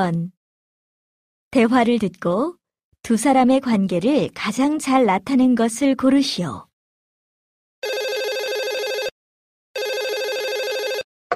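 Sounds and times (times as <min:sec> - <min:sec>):
speech: 0:00.0 - 0:00.4, 0:01.5 - 0:06.7
telephone ringing with bright trilling electronic tone: 0:07.8 - 0:09.2, 0:09.8 - 0:11.1.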